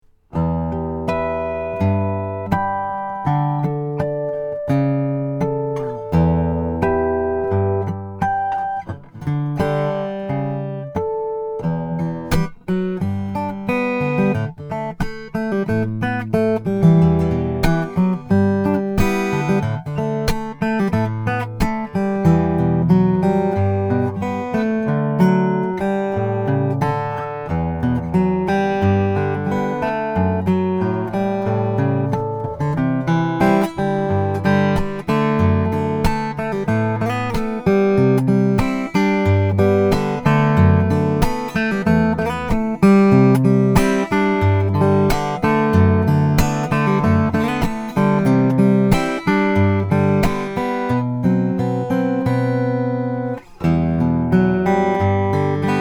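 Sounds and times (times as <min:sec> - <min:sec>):
guitars: 0:00.0 - 0:55.8.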